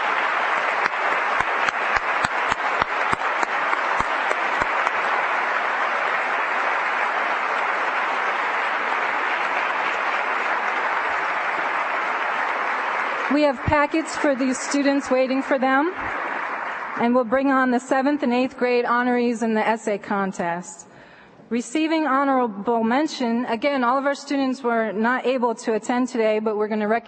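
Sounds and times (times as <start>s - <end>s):
audience applause: 0.0s - 18.1s
speech: 13.3s - 16.2s, 17.0s - 20.9s, 21.5s - 27.0s.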